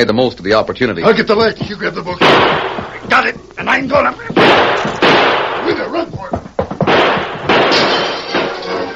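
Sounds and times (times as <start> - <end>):
speech: 0.0 - 6.4
gunshots at a ranch at night: 2.2 - 3.1, 4.3 - 6.0, 6.8 - 8.8.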